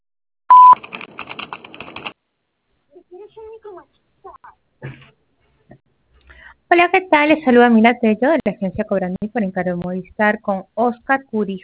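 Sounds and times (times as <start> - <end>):
answering machine beep: 0.5 - 0.8
rapid clicks: 0.7 - 2.2
speech: 6.7 - 11.6.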